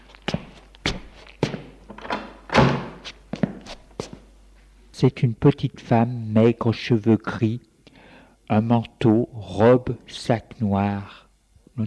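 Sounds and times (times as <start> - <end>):
door being opened: 1.9 - 3.0
speech: 5.0 - 7.7, 8.5 - 11.2.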